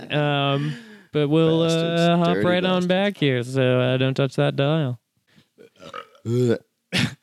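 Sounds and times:
faint mouth and voice noises: 0.0s - 3.3s
speech: 0.1s - 5.0s, 5.8s - 7.2s
loud burp: 5.6s - 7.2s.

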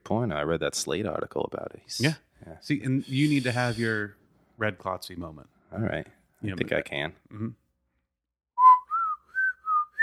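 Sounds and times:
speech: 0.1s - 7.6s
person whistling a tune: 8.6s - 10.0s.

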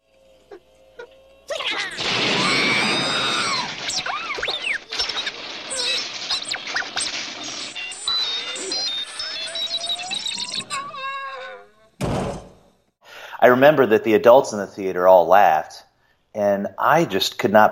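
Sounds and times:
electronic robot screech as the robot is shot: 1.8s - 11.9s
heavy clunk of robot falling over: 12.0s - 12.7s
speech: 13.6s - 15.8s, 16.4s - 17.6s.

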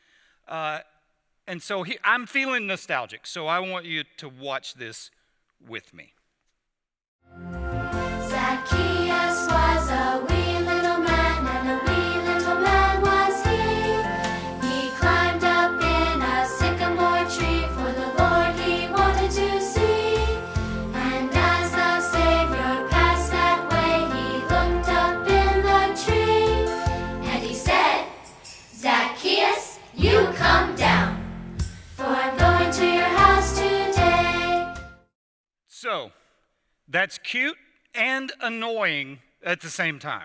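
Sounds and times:
speech: 0.5s - 0.9s, 1.5s - 6.2s, 36.9s - 40.2s
bouncy upbeat children's song with sung vocals from a video: 7.6s - 35.0s.

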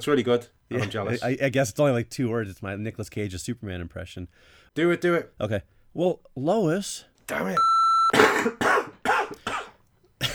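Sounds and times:
speech: 0.0s - 8.7s
person coughing harshly: 8.1s - 10.3s.

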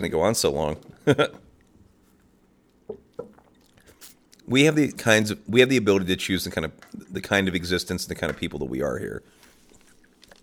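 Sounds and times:
speech: 0.0s - 1.5s, 4.5s - 9.4s
person gulping water: 1.1s - 4.5s, 9.7s - 10.4s
faint breathy rustling: 3.4s - 4.4s, 9.2s - 10.4s.

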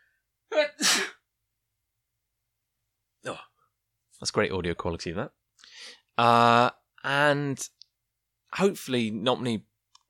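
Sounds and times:
person sneezing: 0.6s - 1.2s
speech: 4.2s - 5.4s, 6.2s - 7.8s, 8.5s - 10.0s.

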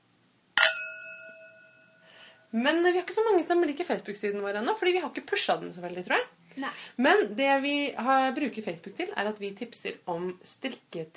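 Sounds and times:
glasses clinking in a toast: 0.6s - 2.0s
speech: 2.5s - 11.1s.

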